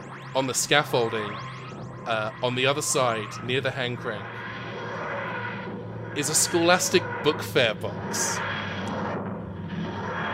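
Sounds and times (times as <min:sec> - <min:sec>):
materialization effect wheezing groaning ancient engines: 0:00.0 - 0:10.3
speech: 0:00.4 - 0:04.4, 0:06.1 - 0:08.6.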